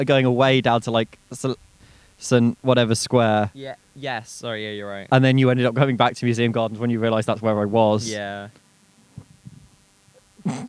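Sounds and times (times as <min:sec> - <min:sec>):
speech: 0:00.0 - 0:08.6, 0:10.4 - 0:10.6
faint breathy sounds: 0:01.7 - 0:02.2
human sneeze: 0:10.4 - 0:10.6.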